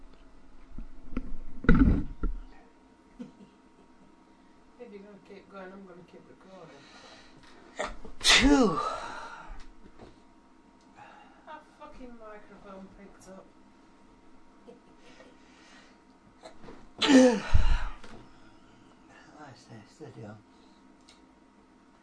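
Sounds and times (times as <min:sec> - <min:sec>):
person sneezing: 0:07.8 - 0:09.2, 0:16.4 - 0:18.0
speech: 0:08.4 - 0:08.9.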